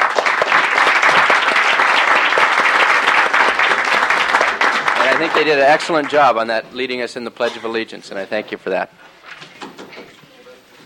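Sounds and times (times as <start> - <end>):
large gathering applauding: 0.0 - 6.6
speech: 5.2 - 9.4.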